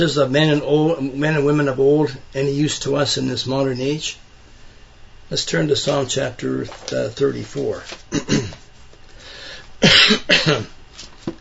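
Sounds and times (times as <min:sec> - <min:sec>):
speech: 0:00.0 - 0:04.2, 0:05.3 - 0:08.6, 0:09.8 - 0:11.3
person with a cold giving harsh loud coughs: 0:08.1 - 0:08.6, 0:09.8 - 0:10.8
person with a cold clearing throat: 0:08.1 - 0:08.7, 0:09.8 - 0:10.8.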